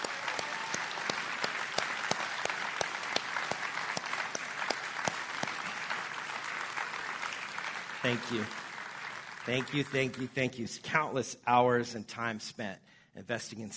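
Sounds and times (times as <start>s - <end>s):
audience clapping: 0.0s - 10.3s
speech: 8.1s - 8.6s, 9.5s - 13.7s.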